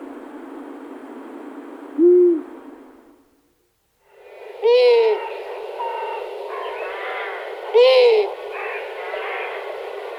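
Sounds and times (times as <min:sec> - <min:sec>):
background hiss: 0:00.0 - 0:10.1
owl giving a short low hoot: 0:02.0 - 0:02.6, 0:04.6 - 0:10.1.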